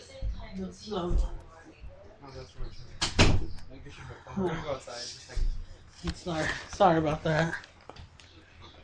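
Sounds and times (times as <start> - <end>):
voices talking: 0.0 - 8.8
speech: 0.5 - 1.4, 2.2 - 7.7
door shutting with a solid thud: 3.0 - 3.6.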